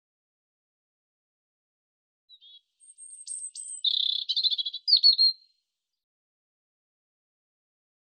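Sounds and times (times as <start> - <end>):
European robin singing: 2.3 - 5.6.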